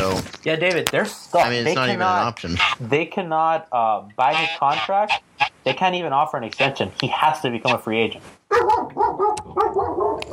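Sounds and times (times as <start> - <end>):
speech: 0.4 - 10.3
Labrador dog barking: 8.5 - 10.3.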